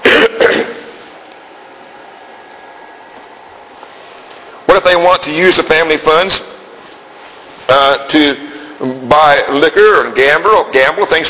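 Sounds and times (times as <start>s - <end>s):
coughing from a tickle in the throat: 0.0s - 1.0s
throat clearing from a tickle in the throat: 0.0s - 1.0s
speech: 5.0s - 6.5s, 7.7s - 11.2s.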